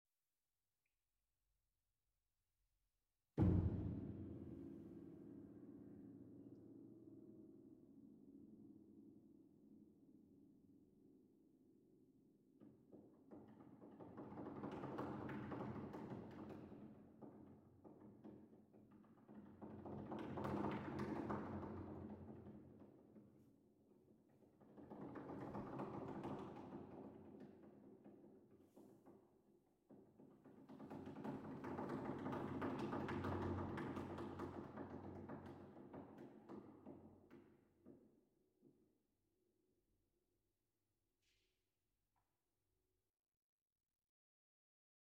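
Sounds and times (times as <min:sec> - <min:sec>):
piano: 0:03.4 - 0:38.2.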